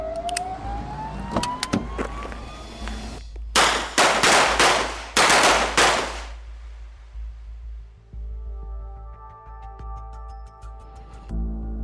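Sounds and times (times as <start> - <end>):
police sirens wailing during a car pursuit: 0.0 - 3.2
low rumble of car engines: 0.0 - 3.6
steady droning tone of traffic: 0.0 - 7.8.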